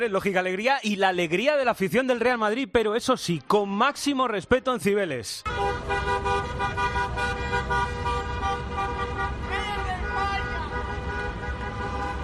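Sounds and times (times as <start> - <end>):
speech: 0.0 - 6.1
car horns honking in a city plaza: 5.4 - 12.2.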